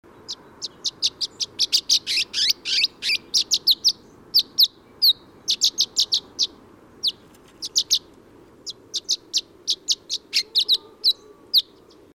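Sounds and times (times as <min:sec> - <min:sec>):
bird chirping: 0:00.1 - 0:12.1.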